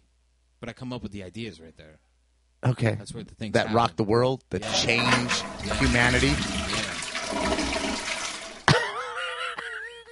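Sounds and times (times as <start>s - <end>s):
speech: 0.6s - 6.5s
toilet flushing: 4.6s - 8.8s
laughter: 8.6s - 10.1s.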